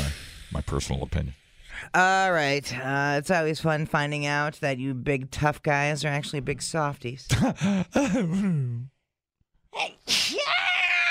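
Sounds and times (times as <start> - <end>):
wavering drawn-out voiced intake of breath: 0.0 - 0.8
speech: 0.6 - 8.9, 9.7 - 10.4
sneeze: 9.9 - 10.5.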